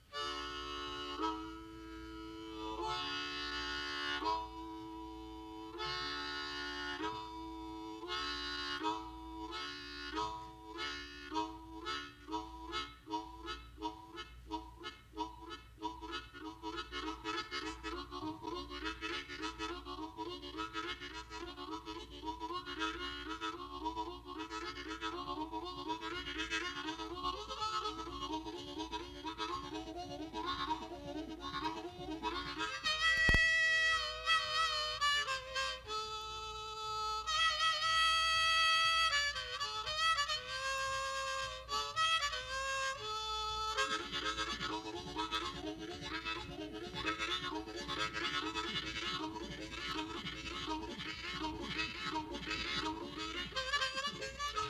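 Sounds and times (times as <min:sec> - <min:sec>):
harmonica tune: 0:00.0 - 0:54.6.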